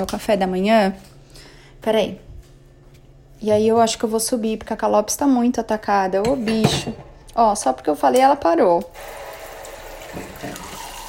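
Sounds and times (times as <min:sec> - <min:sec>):
speech: 0:00.0 - 0:01.1, 0:01.8 - 0:02.3, 0:03.4 - 0:09.2
water pouring into a coffee cup: 0:09.0 - 0:11.0.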